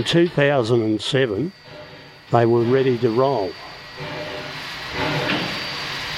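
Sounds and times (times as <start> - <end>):
speech: 0.0 - 1.6, 2.3 - 4.2
restored steam locomotive with new boiler running: 0.0 - 6.1.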